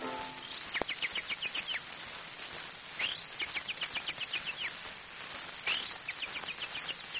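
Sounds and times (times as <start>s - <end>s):
imitation of a chaffinch's song: 0.0s - 1.9s, 2.9s - 4.8s, 5.6s - 7.1s.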